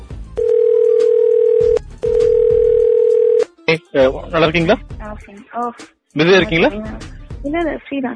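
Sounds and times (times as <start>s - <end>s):
ringback tones of an outgoing phone call: 0.4s - 3.5s
speech: 3.7s - 8.1s
brief burst of a voice: 6.2s - 7.0s.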